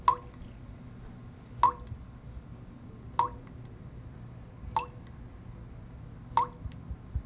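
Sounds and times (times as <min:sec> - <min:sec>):
water drops: 0:00.0 - 0:00.2, 0:01.6 - 0:01.9, 0:03.2 - 0:03.4.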